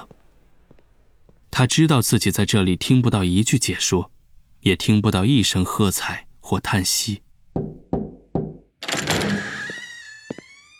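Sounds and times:
speech: 1.6s - 7.3s
knuckles knocking on an office door in a school basement: 7.5s - 8.7s.

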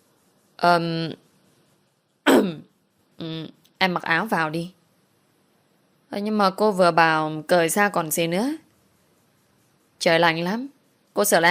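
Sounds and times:
speech: 0.6s - 1.2s, 2.4s - 4.8s, 6.1s - 8.6s, 10.0s - 11.4s
woman clearing her throat: 2.3s - 2.6s.

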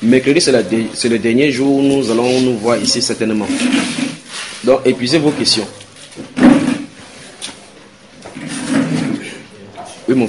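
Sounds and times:
speech: 0.0s - 6.4s
chairs dragged across a floor: 2.0s - 7.5s, 8.2s - 9.5s.

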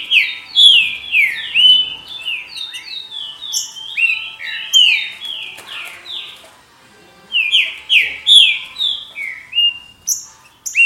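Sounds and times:
green-winged saltator whistled song: 0.0s - 6.4s, 7.3s - 10.8s.

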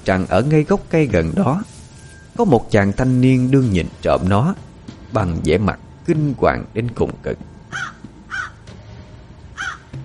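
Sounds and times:
speech: 0.0s - 1.7s, 2.4s - 7.9s
black crow cawing: 7.7s - 8.7s, 9.5s - 10.0s.

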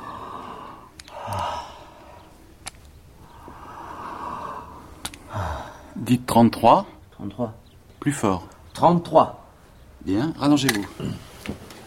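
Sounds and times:
patient breathing hard through an open mouth during a medical examination: 0.0s - 2.5s, 3.2s - 6.0s
faint clicks: 0.9s - 3.6s, 5.0s - 5.3s
speech: 6.0s - 9.4s, 10.0s - 11.6s.

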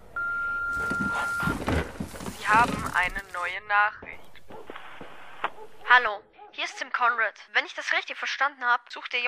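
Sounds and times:
phone signalling an incoming call: 0.2s - 1.7s
speech: 2.6s - 4.1s, 5.6s - 9.2s.

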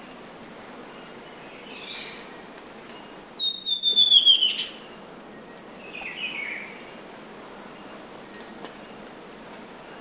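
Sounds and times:
Southern chestnut-tailed antbird pallens whistling call: 1.6s - 2.3s, 3.4s - 6.9s.

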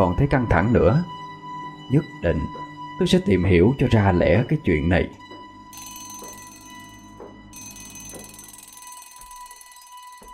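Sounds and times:
speech: 0.0s - 1.2s, 1.9s - 5.2s
alarm bell ringing in a room: 5.7s - 10.3s.

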